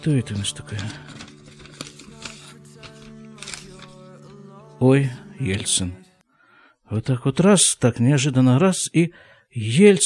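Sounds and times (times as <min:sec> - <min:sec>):
speech: 0:00.0 - 0:01.2, 0:04.8 - 0:06.1, 0:06.9 - 0:10.0
newspaper insert rustling and crinkling as it is unfolded: 0:00.0 - 0:04.5.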